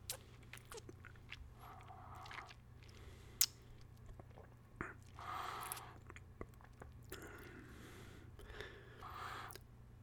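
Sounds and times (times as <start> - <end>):
soft lip smacks and slurps: 0.0 - 7.6
low steady hum: 0.0 - 10.0
liqueur swished in the mouth while tasting: 0.1 - 3.0.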